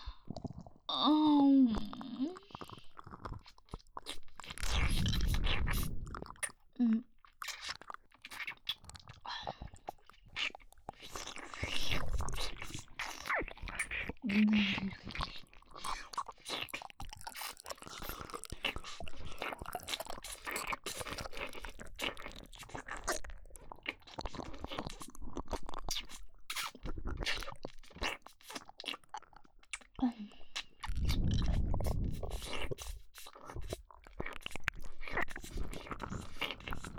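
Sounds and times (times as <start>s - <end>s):
wet licking and chewing food mouth sounds: 0.0s - 36.9s
person whispering: 1.0s - 2.5s.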